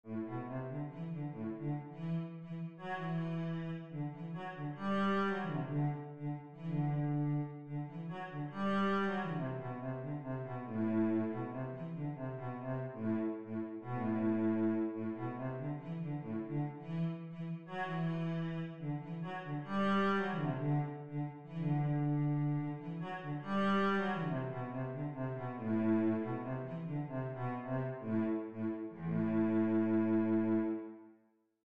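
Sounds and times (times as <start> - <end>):
cello: 0.0 - 31.2.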